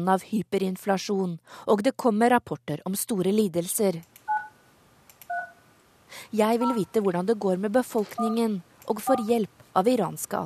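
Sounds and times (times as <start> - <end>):
speech: 0.0 - 4.2, 6.1 - 10.4
touch-tone beeps from a phone keypad: 4.3 - 4.6, 5.3 - 5.6, 6.6 - 6.9, 8.1 - 9.3.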